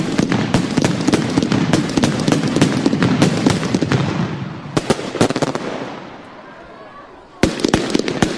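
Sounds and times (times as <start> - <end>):
fireworks bursting: 0.0 - 8.3.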